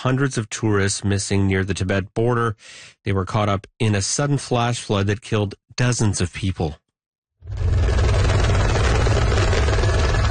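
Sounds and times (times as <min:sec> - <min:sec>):
speech: 0:00.0 - 0:06.8
rescue helicopter hovering: 0:07.4 - 0:10.2.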